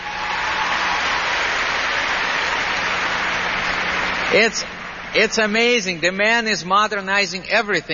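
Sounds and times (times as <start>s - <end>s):
crowd applauding: 0.0s - 5.8s
speech: 4.3s - 7.9s.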